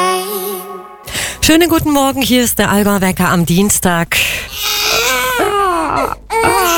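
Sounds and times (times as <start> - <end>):
speech: 1.5 - 4.7
baby crying hard in high wails: 4.5 - 6.7.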